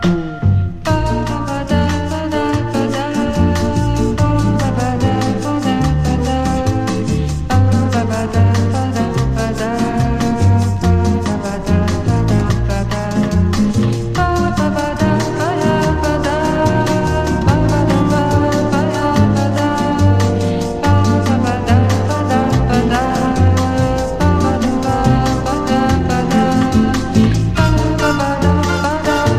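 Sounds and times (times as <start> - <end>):
beach samba bossa nova music: 0.0 - 29.3.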